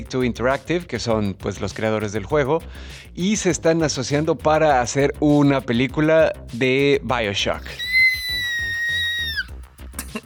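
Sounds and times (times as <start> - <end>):
speech: 0.0 - 7.9
excited fan screaming: 7.7 - 9.5.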